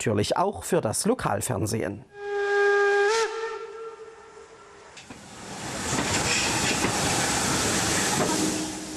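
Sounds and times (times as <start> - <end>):
speech: 0.0 - 2.5
historic steam locomotive whistle: 2.1 - 4.9, 7.4 - 8.9
historic steam train rumbling as it rolls in: 4.0 - 8.9
hissing steam from a steam locomotive: 5.0 - 8.9.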